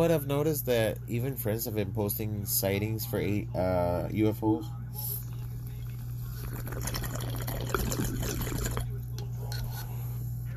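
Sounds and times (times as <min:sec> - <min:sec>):
speech: 0:00.0 - 0:05.2, 0:06.5 - 0:07.5
low steady hum: 0:00.0 - 0:10.5
water pipe bong bubbling with a dense gurgling burble: 0:05.3 - 0:09.0.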